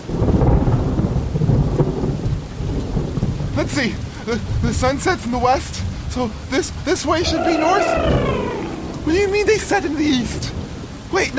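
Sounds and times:
steady pouring rain: 0.0s - 11.3s
speech: 3.6s - 11.3s
deep rumbling thunder: 7.2s - 10.9s.

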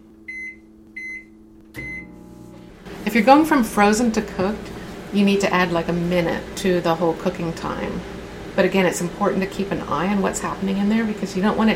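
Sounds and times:
microwave oven low steady hum: 0.0s - 11.7s
microwave electronic keypad beeps: 0.3s - 2.1s
microwave oven click: 0.3s - 2.3s
speech: 3.1s - 11.7s.

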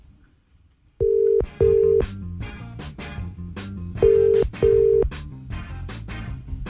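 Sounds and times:
telephone ringing tone as a phone call is placed: 1.0s - 2.1s, 4.0s - 5.1s
rhythmic music: 1.4s - 6.6s.

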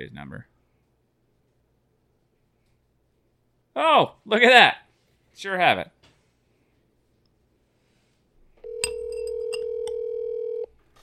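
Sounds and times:
speech: 0.0s - 0.6s, 3.8s - 4.8s, 5.4s - 6.0s
telephone ringing tone on an outgoing call: 8.6s - 10.8s.

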